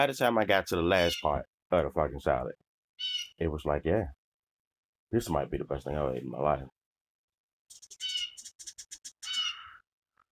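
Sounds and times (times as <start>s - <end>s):
speech: 0.0s - 4.2s, 5.1s - 6.8s
birds chirping outdoors: 0.9s - 1.5s, 3.0s - 3.4s, 7.7s - 9.8s.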